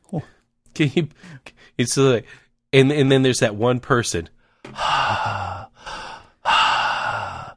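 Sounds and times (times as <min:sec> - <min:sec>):
speech: 0:00.1 - 0:05.0
voice imitating heavy loud mouth breathing of a person on a phone call: 0:04.7 - 0:07.5.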